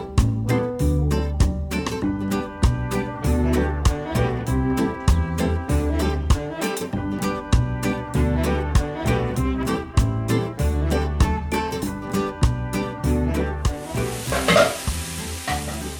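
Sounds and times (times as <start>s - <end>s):
rhythmic music with a steady beat: 0.0s - 15.9s
tamales sizzling in a frying pan: 13.8s - 15.9s.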